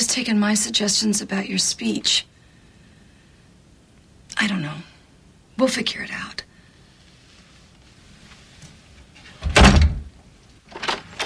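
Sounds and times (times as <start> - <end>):
speech: 0.2 - 2.3, 4.4 - 4.9, 5.6 - 6.5
door swinging open: 9.3 - 10.1.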